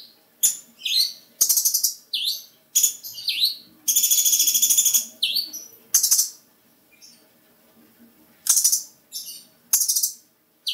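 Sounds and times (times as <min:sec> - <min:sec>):
small bird singing high rapid trills: 0:00.0 - 0:07.2, 0:08.4 - 0:10.7.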